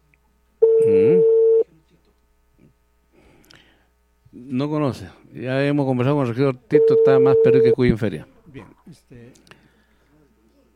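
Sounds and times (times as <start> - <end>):
telephone ringing tone on an unanswered call: 0.6 - 1.6, 6.8 - 7.8
speech: 4.6 - 9.6.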